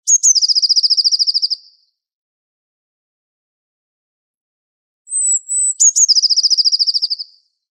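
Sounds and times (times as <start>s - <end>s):
great tit singing: 0.1s - 1.8s, 5.1s - 7.5s.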